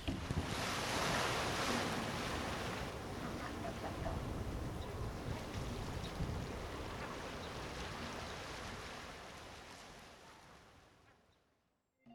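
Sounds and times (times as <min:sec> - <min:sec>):
gusty wind buffeting the microphone: 0:00.0 - 0:08.9
ocean surf: 0:00.0 - 0:10.9.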